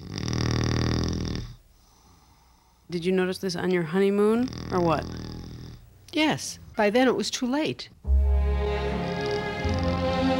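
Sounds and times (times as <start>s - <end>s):
man snoring: 0.0s - 1.6s, 4.4s - 5.8s, 9.1s - 10.1s
speech: 2.9s - 5.2s, 6.1s - 8.0s.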